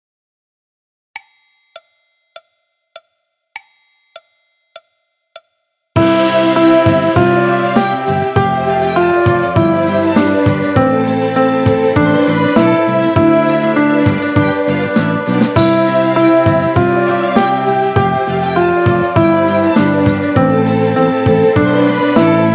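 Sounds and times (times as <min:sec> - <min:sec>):
piano and orchestra playing: 0:06.0 - 0:22.5.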